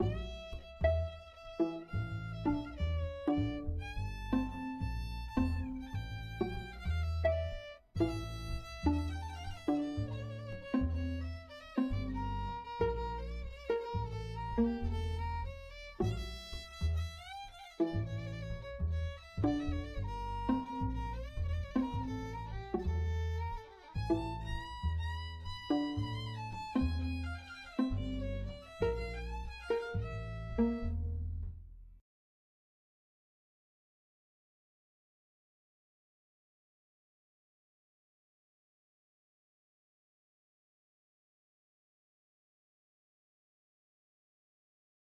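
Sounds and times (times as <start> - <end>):
violin trio: 0.0 - 31.6.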